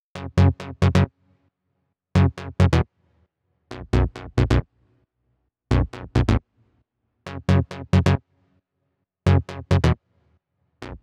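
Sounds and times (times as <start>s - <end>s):
135BPM bassline in F# minor: 0.2s - 1.1s, 2.2s - 2.9s, 3.7s - 4.7s, 5.7s - 6.4s, 7.3s - 8.2s, 9.3s - 10.0s, 10.8s - 11.0s.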